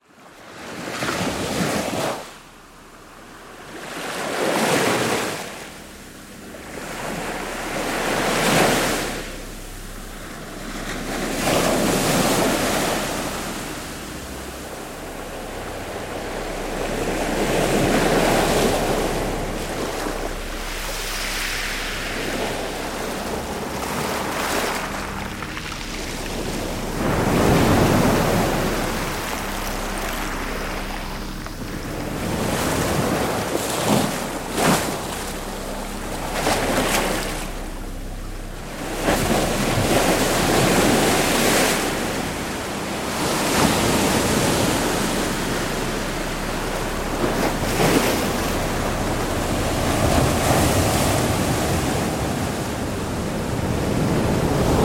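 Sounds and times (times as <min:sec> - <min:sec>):
ocean waves: 0:00.1 - 0:54.8.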